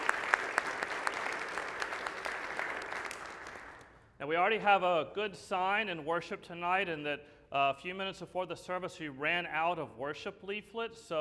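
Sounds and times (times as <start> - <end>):
audience at an evening church service clapping: 0.0 - 4.0
speech: 4.2 - 11.2.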